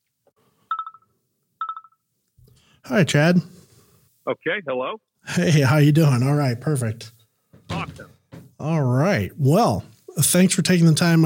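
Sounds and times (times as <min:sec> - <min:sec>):
telephone ringing: 0:00.7 - 0:02.0
speech: 0:02.8 - 0:03.6, 0:04.2 - 0:07.2, 0:07.9 - 0:11.2.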